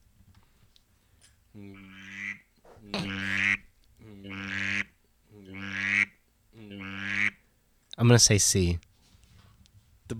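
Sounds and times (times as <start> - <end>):
drake mallard duck quacking: 1.7 - 3.6, 4.2 - 7.4
speech: 8.0 - 8.9.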